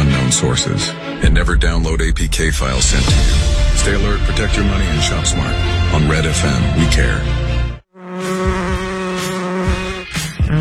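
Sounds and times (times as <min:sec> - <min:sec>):
speech: 0:00.4 - 0:07.5
insect buzzing: 0:07.9 - 0:10.5.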